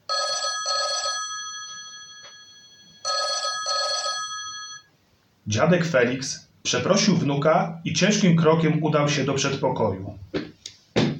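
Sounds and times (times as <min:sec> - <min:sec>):
faint room hum: 0:00.0 - 0:11.1
telephone bell ringing in a double-ring pattern: 0:00.1 - 0:04.9
speech: 0:05.5 - 0:10.4.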